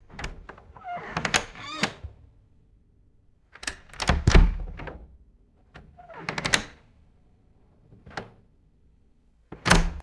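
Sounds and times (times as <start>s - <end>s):
interior wooden door opening and shutting: 0.0s - 2.2s, 3.6s - 5.1s, 5.8s - 6.8s, 9.6s - 10.0s.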